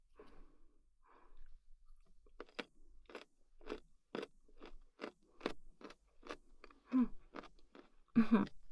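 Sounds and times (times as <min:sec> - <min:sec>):
crunchy chewing of food at a meal: 0:02.4 - 0:08.0.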